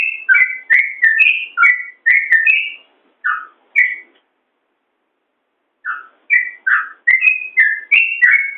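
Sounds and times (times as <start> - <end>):
yellow-vented bulbul singing bubbly whistled notes: 0.0 - 4.1, 5.8 - 8.5.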